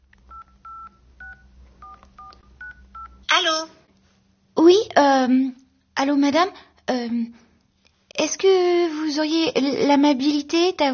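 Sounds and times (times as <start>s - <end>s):
telephone keypad dialing tones as a number is entered on a phone: 0.3s - 3.3s
speech: 4.6s - 7.4s, 8.2s - 10.9s.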